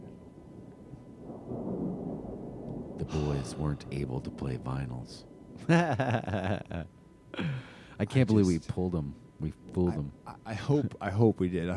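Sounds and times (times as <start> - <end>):
deep thunder rumbling: 0.0 - 5.7
faint hiss like rain: 0.0 - 11.7
speech: 3.1 - 11.7
laughter: 5.6 - 7.7.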